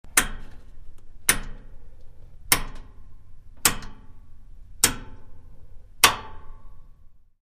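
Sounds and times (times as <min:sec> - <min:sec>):
large metal dial switch clicks: 0:00.1 - 0:03.0, 0:03.6 - 0:04.2, 0:04.8 - 0:05.4, 0:06.0 - 0:06.6.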